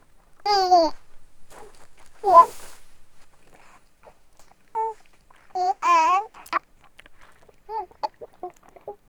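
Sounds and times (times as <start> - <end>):
baby crying: 0.4 - 1.0, 1.6 - 2.6, 4.8 - 5.0, 5.6 - 6.6, 7.7 - 8.2.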